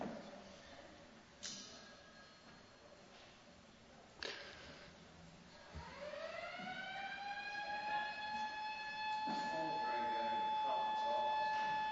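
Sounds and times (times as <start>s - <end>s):
fire alarm siren wailing: 5.8s - 11.9s.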